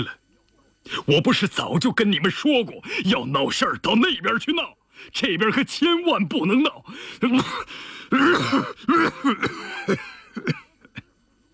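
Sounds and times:
speech: 0:00.0 - 0:00.2, 0:00.8 - 0:10.6
man in a fit of violent hacking coughs: 0:07.0 - 0:10.7.

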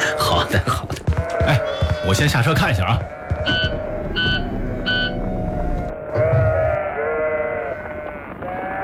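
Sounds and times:
speech: 0:00.4 - 0:03.6
injured lamb bleating: 0:01.1 - 0:02.2, 0:03.0 - 0:04.4, 0:05.1 - 0:08.8.

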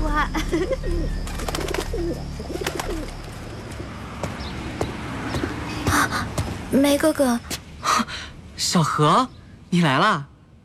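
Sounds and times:
steady outdoor hum in a courtyard: 0:00.0 - 0:10.6
speech: 0:00.5 - 0:01.4, 0:06.7 - 0:10.3
pigeons cooing in a courtyard: 0:00.6 - 0:04.0.

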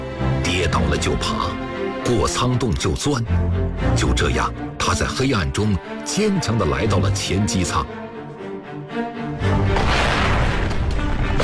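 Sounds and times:
soft tonal music: 0:00.0 - 0:09.8
speech: 0:00.5 - 0:08.1
artillery blast: 0:09.7 - 0:11.4.

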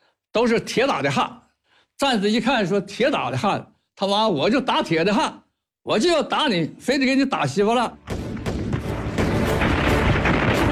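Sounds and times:
speech: 0:00.4 - 0:01.4, 0:02.0 - 0:08.2
artillery barrage on a cluster of bunkers at a water-distribution station in a civil-war battle: 0:08.1 - 0:10.7.

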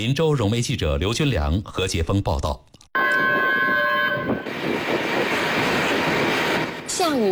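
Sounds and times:
speech: 0:00.0 - 0:02.7, 0:07.0 - 0:07.2
long horn of a red tourism train pulling into a station: 0:03.0 - 0:06.2
loud rumble and hiss of a train rolling: 0:04.4 - 0:07.2.

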